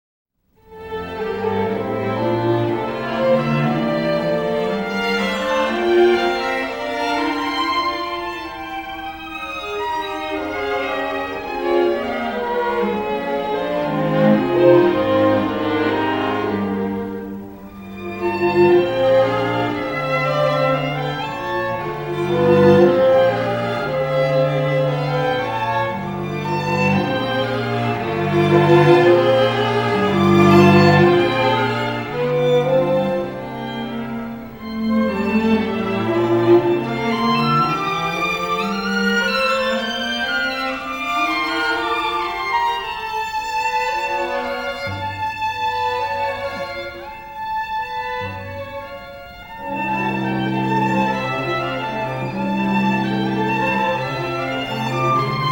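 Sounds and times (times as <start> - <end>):
string music: 0.6 - 55.5.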